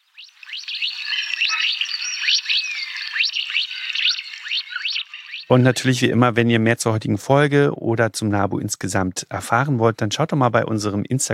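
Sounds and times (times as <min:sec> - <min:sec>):
Mandarin duck peeping calls: 0:00.0 - 0:06.0
speech: 0:05.5 - 0:11.3.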